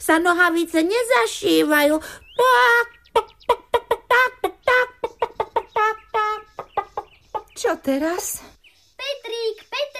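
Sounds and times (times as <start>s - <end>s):
speech: 0.0s - 3.6s, 7.6s - 9.9s
hen squawking: 2.0s - 7.6s
hen clucking: 2.2s - 8.4s.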